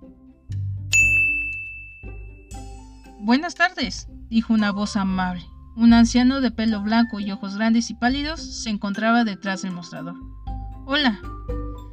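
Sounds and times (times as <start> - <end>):
small bell over a shop door ringing: 0.9 - 2.5
speech: 3.2 - 11.5.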